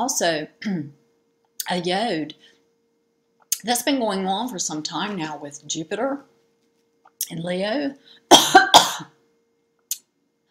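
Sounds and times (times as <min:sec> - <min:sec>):
speech: 0:00.0 - 0:01.0, 0:01.6 - 0:02.5, 0:03.6 - 0:06.3, 0:07.2 - 0:09.1
person coughing: 0:08.3 - 0:09.2.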